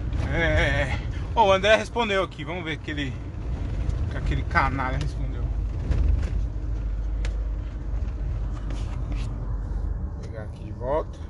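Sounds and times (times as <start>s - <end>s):
car engine and road rumble heard from inside while pulling over: 0.0s - 11.2s
speech: 1.4s - 3.3s, 4.1s - 6.0s, 10.8s - 11.2s.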